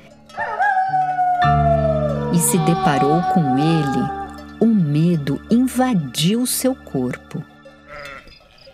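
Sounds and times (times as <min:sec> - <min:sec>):
wolf howling: 0:00.3 - 0:04.6
speech: 0:02.4 - 0:07.5.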